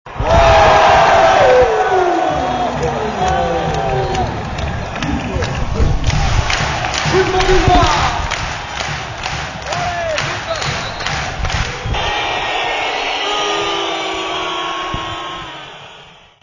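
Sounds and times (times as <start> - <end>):
crowd applauding: 0.1 - 16.2
people whistling: 10.4 - 11.4, 12.7 - 16.4.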